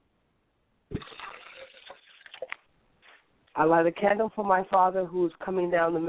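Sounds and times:
liquid poured out as a libation to the east: 0.9s - 2.7s
speech: 3.6s - 6.0s.

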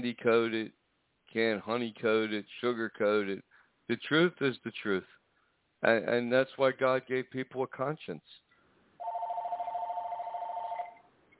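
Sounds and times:
speech: 0.0s - 5.2s, 5.8s - 8.4s
telephone ringing with an electronic trill: 9.0s - 11.1s.

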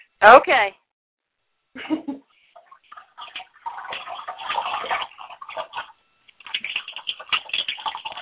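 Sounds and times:
speech: 0.2s - 0.8s, 1.8s - 2.2s
water gurgling and splashing: 2.5s - 8.2s.

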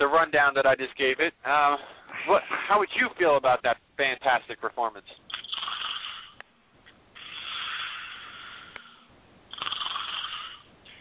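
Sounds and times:
speech: 0.0s - 5.3s
person imitating snoring with rasping snores: 5.4s - 6.4s, 7.2s - 11.0s.

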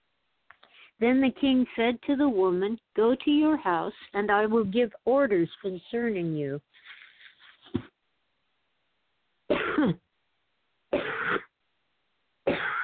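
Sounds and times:
speech: 1.0s - 6.9s, 9.8s - 10.0s
loud harsh coughing fit: 9.5s - 10.0s, 11.0s - 11.6s, 12.5s - 12.8s.

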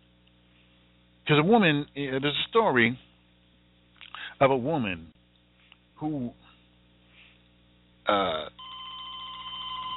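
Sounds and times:
speech: 1.3s - 3.1s, 4.4s - 5.2s, 6.0s - 6.4s, 8.1s - 8.6s
telephone bell ringing: 8.6s - 9.9s.

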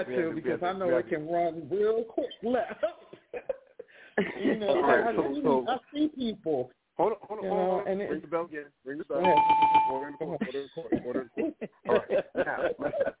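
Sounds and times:
speech: 0.0s - 3.6s, 4.2s - 13.1s
laughter: 2.4s - 5.1s, 10.3s - 13.1s
bell ringing: 9.2s - 10.3s.

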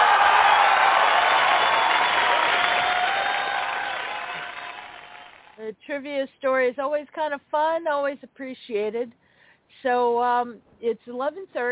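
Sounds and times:
sizable crowd applauding: 0.0s - 5.6s
speech: 6.0s - 9.2s, 9.8s - 11.7s.

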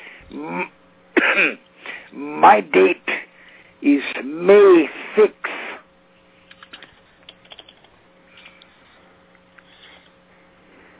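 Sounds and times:
speech: 0.3s - 0.8s, 1.4s - 3.1s, 3.8s - 5.5s
raspy coughing and throat clearing over a telephone-like line: 0.5s - 1.7s.

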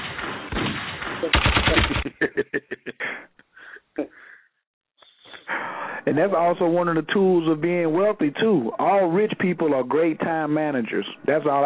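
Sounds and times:
gunshot sound effect: 0.0s - 2.2s
laughter: 1.7s - 3.3s
speech: 2.2s - 2.7s, 6.1s - 11.6s.

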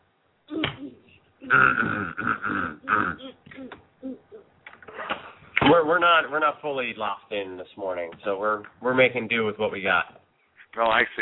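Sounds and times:
person clearing throat: 0.5s - 3.7s
speech: 1.5s - 2.6s, 5.9s - 10.1s, 10.8s - 11.2s.

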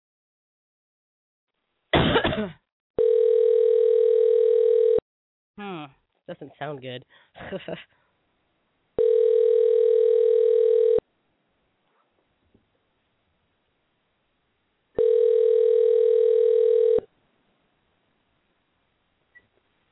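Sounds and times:
speech: 2.4s - 3.1s, 5.6s - 8.0s
telephone call ringing out unanswered with long ringback tones: 3.0s - 5.0s, 9.0s - 11.0s, 15.0s - 17.1s.

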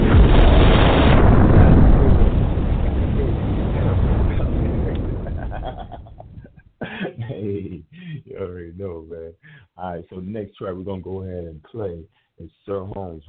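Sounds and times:
bomb explosion sound effect: 0.0s - 6.5s
laughter: 4.7s - 8.4s
speech: 9.8s - 13.2s.

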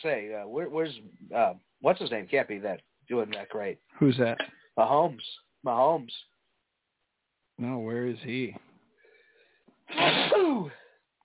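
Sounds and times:
speech: 0.0s - 6.3s, 7.6s - 8.6s, 9.9s - 10.8s
sneeze: 9.9s - 10.9s.

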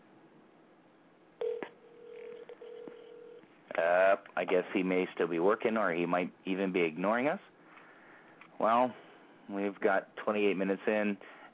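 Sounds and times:
low electronic telephone ringback tone through a handset: 1.4s - 3.4s
speech: 3.8s - 7.5s, 8.6s - 11.5s.

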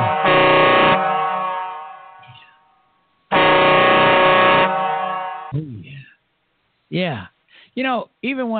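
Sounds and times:
truck air horn blasts: 0.0s - 2.7s, 3.3s - 5.5s
speech: 6.9s - 8.5s.

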